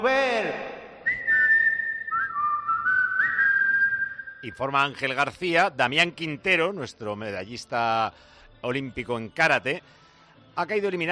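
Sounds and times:
playful whistle in a car-service advert, meant as a car whistling: 1.0 - 4.6
speech: 4.4 - 10.0, 10.6 - 11.1.

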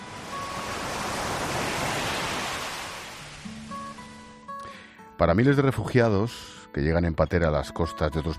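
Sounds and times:
sea waves swelling and receding: 0.0 - 4.4
speech: 5.2 - 8.3.

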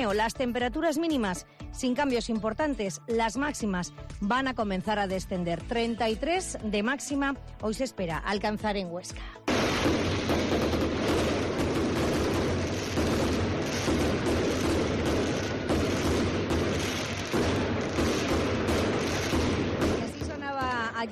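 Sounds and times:
speech: 0.0 - 10.0
fireworks exploding at the end of festivities: 9.5 - 21.0.

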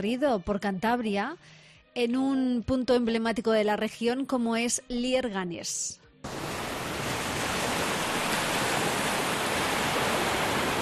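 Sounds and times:
speech: 0.0 - 6.5
rough surf on the Cantabrian Sea in Cantabria Spain: 6.3 - 10.8.

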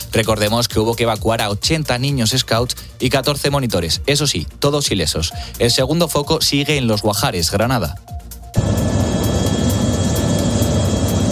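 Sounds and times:
speech: 0.1 - 8.6
firefighting helicopter flying over a wildfire: 8.6 - 11.3.

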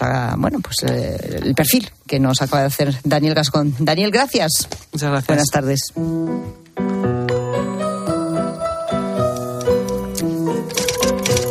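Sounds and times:
speech: 0.0 - 6.6
bright steady orchestral melody: 6.0 - 11.4
typewriter keys clacking: 9.2 - 11.4.

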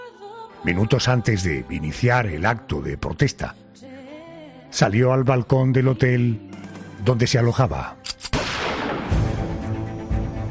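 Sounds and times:
speech: 0.6 - 3.6, 4.7 - 8.0
rifle shot fired at a hotel balcony: 8.2 - 9.5.

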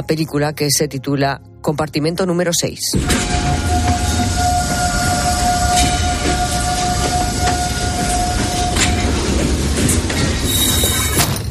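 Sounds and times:
speech: 0.0 - 3.8
Trans-Siberian train running on rails across Russia: 3.0 - 11.4
sustained metallic train wheel squeal: 3.0 - 11.4.

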